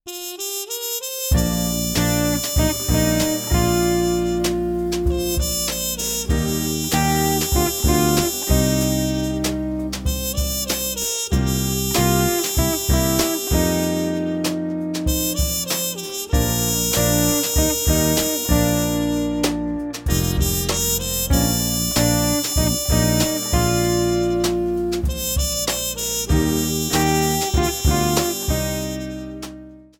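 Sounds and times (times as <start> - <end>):
blues and jazz guitar: 1.3 - 29.9.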